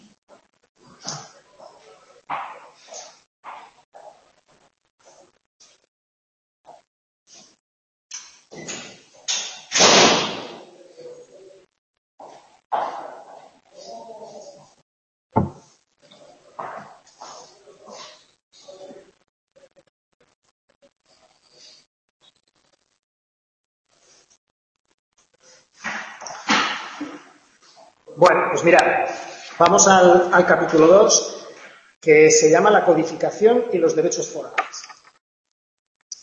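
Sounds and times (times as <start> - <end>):
door shutting: 8.5 - 10.7
speech: 28.2 - 31.4, 32.0 - 34.6.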